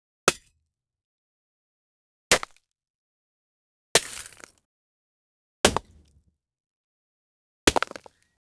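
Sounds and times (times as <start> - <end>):
ice axe hit and crack in sport: 5.7 - 6.2.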